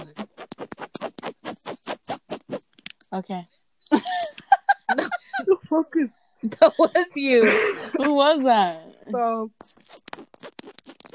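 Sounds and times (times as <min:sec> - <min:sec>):
fingers scratching on a bed's fabric surface: 0:00.0 - 0:03.0, 0:09.6 - 0:11.1
speech: 0:03.1 - 0:04.1, 0:05.7 - 0:09.6
laughter: 0:03.9 - 0:05.6, 0:06.4 - 0:08.7.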